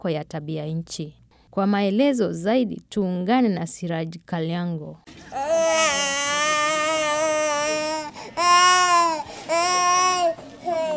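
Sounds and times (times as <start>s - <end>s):
speech: 0.0s - 6.0s
infant crying in an inpatient ward at a refugee camp health centre: 5.3s - 10.9s.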